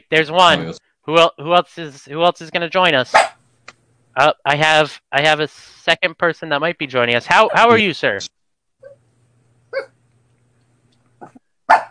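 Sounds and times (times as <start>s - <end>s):
faint low hum: 0.0s - 11.8s
speech: 0.1s - 3.4s, 4.2s - 9.0s
young Shih Tzu dog yipping: 3.1s - 3.4s, 9.7s - 10.0s, 11.2s - 11.8s.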